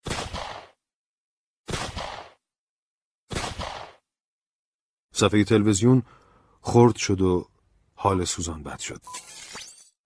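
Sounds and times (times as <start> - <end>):
gunshots fired at a house: 0.0 - 0.8, 1.7 - 2.4, 3.3 - 4.1
speech: 5.2 - 9.5.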